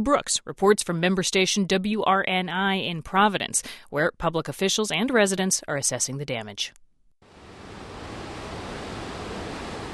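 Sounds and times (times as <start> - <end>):
speech: 0.0 - 6.8
flooded river water crashing down a waterfall: 7.4 - 9.9.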